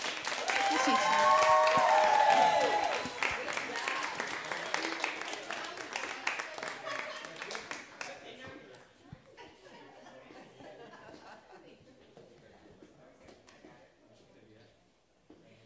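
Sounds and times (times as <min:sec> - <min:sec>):
audience applause: 0:00.0 - 0:08.2
audience whoops: 0:00.3 - 0:03.3
laughter: 0:00.5 - 0:02.9, 0:06.5 - 0:07.9, 0:09.3 - 0:12.3.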